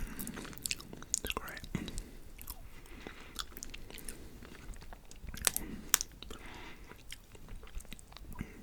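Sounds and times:
person chewing raw honeycomb: 0.1 - 8.5
mouth clicks and smacks: 5.4 - 6.3.

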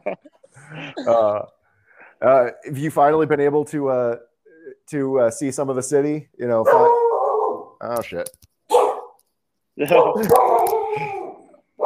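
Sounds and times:
laughter: 0.0 - 1.4
speech: 1.0 - 1.6, 2.2 - 4.3, 4.9 - 7.0, 7.8 - 8.5, 9.8 - 11.2
dog barking and yowling: 6.7 - 7.8, 8.7 - 9.2, 9.9 - 11.8.

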